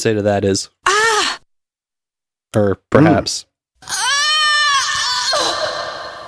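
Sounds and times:
speech: 0.0 - 0.8, 2.5 - 4.1
person screaming: 0.9 - 1.4, 3.8 - 6.2.

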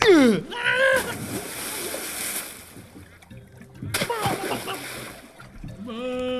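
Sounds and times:
water churning and sloshing as a person struggles: 0.0 - 6.3
heavy splash of a person with a weighted backpack shoved into water: 0.8 - 3.0, 3.8 - 5.4.

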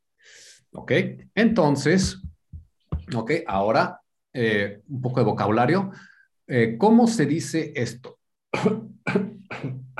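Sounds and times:
speech: 0.7 - 2.3, 3.1 - 9.8
person coughing: 8.6 - 9.9.

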